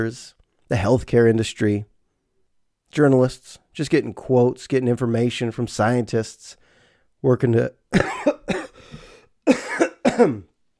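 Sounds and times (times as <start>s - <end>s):
speech: 0.0s - 1.9s, 2.9s - 6.6s, 7.2s - 8.3s, 10.2s - 10.5s
rough raspy breath: 6.6s - 7.1s, 8.6s - 9.4s
loud coughing fit with hacking coughs: 7.9s - 10.6s.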